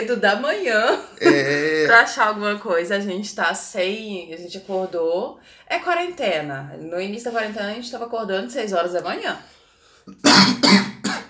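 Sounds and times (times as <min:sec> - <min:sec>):
speech: 0:00.0 - 0:10.9
laughter: 0:01.2 - 0:02.0
loud harsh coughs: 0:01.2 - 0:02.0, 0:10.1 - 0:11.2
faint breath: 0:05.4 - 0:05.7, 0:09.4 - 0:10.1.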